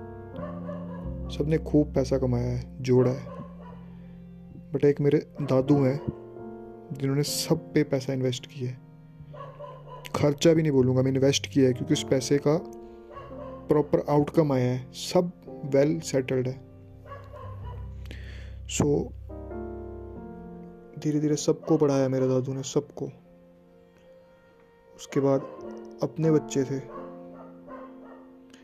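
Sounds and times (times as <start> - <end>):
dog barking: 0.4 - 1.1, 3.1 - 3.9, 5.4 - 6.2, 9.3 - 10.2, 13.1 - 13.8, 17.0 - 17.9, 21.6 - 22.0, 25.1 - 25.9, 26.9 - 28.4
speech: 1.3 - 3.4, 4.7 - 6.2, 6.9 - 8.8, 10.2 - 12.8, 13.7 - 16.7, 18.7 - 19.2, 21.0 - 23.2, 25.0 - 27.0.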